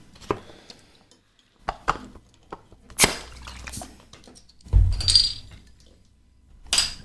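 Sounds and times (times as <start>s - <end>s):
glassy clinks and clicks of a beer bottle: 4.9s - 5.5s.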